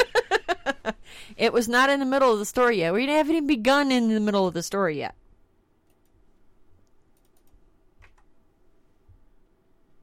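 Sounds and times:
speech: 0:01.4 - 0:05.2
soft typing on a computer keyboard: 0:07.1 - 0:08.3.

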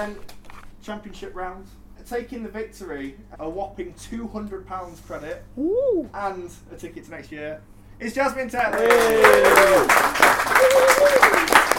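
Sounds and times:
speech: 0:00.0 - 0:11.2
person whooping: 0:05.6 - 0:06.2, 0:08.8 - 0:11.7
applause for the winner of a city grand prix competition: 0:08.7 - 0:11.7.

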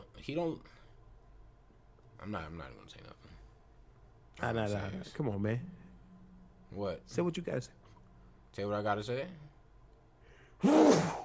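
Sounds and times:
speech: 0:00.2 - 0:00.8, 0:02.2 - 0:03.4, 0:04.4 - 0:05.8, 0:06.7 - 0:07.8, 0:08.6 - 0:09.5
sneeze: 0:10.6 - 0:11.2.

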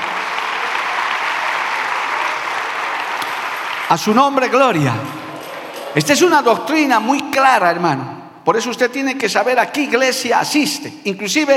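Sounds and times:
audience applauding: 0:00.0 - 0:07.6
speech: 0:03.9 - 0:05.2, 0:06.0 - 0:11.5.

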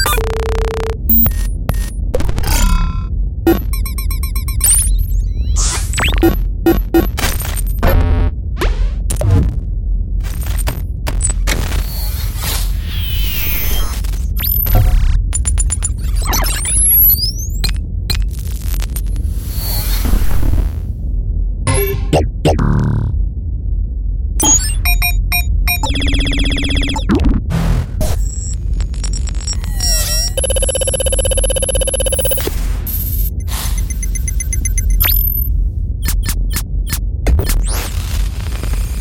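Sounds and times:
futuristic computer interface clicks, bleeps and data chirps: 0:00.0 - 0:01.4, 0:02.5 - 0:07.1, 0:21.7 - 0:23.1, 0:24.4 - 0:27.1, 0:29.5 - 0:35.5
low rumbling bed hum: 0:00.0 - 0:39.0.

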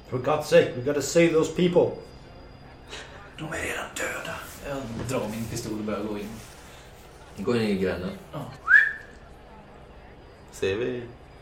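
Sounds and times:
speech: 0:00.1 - 0:02.1, 0:02.9 - 0:06.5, 0:07.4 - 0:08.7, 0:10.6 - 0:11.2
single short rising and gliding whistle: 0:08.6 - 0:09.1.

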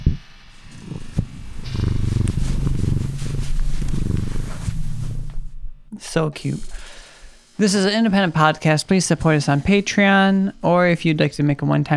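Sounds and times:
cat's head rubbing against microphone: 0:00.6 - 0:05.6
cat purring: 0:00.6 - 0:05.9
speech: 0:06.2 - 0:06.8, 0:07.6 - 0:11.9.

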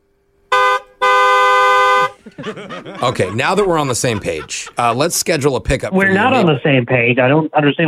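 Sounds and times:
car horn honking: 0:00.5 - 0:02.2
laughter: 0:02.1 - 0:06.6
speech: 0:02.4 - 0:07.8.

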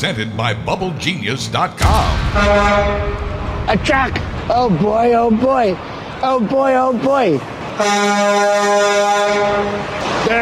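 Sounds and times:
speech: 0:00.0 - 0:10.4
truck horn blaring: 0:02.3 - 0:03.6, 0:07.7 - 0:10.4.

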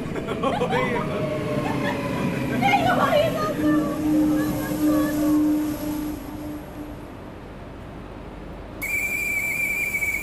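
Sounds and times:
people laughing: 0:00.0 - 0:03.2
train rumbling as it pulls into a station: 0:00.0 - 0:10.2
speech: 0:00.3 - 0:01.4.

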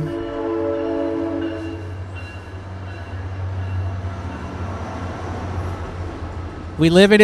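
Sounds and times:
horn-like tone: 0:00.0 - 0:02.0
commuter train passing: 0:00.0 - 0:07.2.

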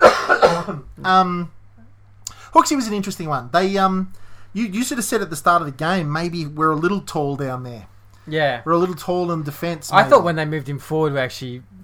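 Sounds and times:
person coughing roughly: 0:00.0 - 0:00.9
speech: 0:00.7 - 0:01.6, 0:02.5 - 0:11.8.

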